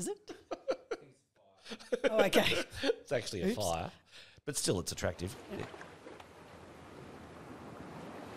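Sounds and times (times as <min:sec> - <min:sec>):
speech: 0:00.0 - 0:00.4, 0:01.7 - 0:05.9
laughter: 0:00.0 - 0:03.6
ocean surf rolling onto a beach: 0:06.4 - 0:08.3.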